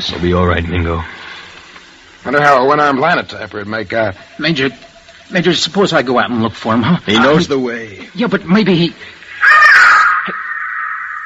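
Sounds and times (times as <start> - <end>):
speech: 0.0 - 1.2, 2.2 - 9.2
bird calling with a high wavering cry: 9.4 - 11.2.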